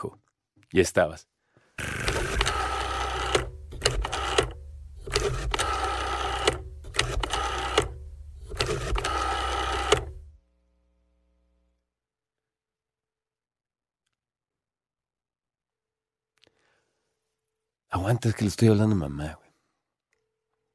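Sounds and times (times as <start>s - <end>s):
speech: 0.0s - 2.1s, 18.0s - 19.4s
telephone being dialed, whirring mechanical clicking: 1.8s - 10.3s.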